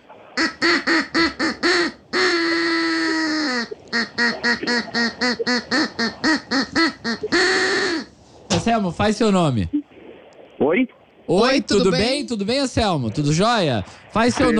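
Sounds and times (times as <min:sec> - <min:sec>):
duck quacking: 0:00.4 - 0:08.2
speech: 0:08.7 - 0:09.8, 0:10.7 - 0:14.5.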